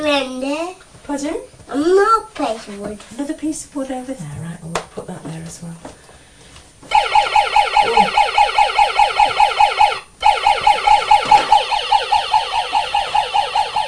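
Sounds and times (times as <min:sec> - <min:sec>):
speech: 0:00.1 - 0:06.0
toy police car siren set off by its button: 0:06.9 - 0:13.8.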